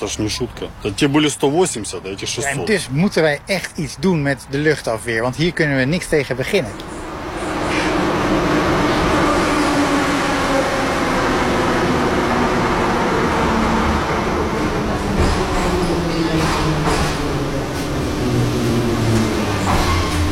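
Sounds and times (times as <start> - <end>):
speech: 0.0 - 7.0
metro train rumbling in an underground station: 4.5 - 20.2.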